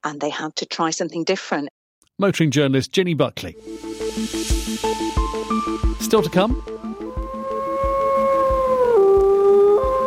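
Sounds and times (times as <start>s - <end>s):
speech: 0.0s - 5.1s, 6.1s - 6.8s
wolf howling: 6.8s - 10.0s.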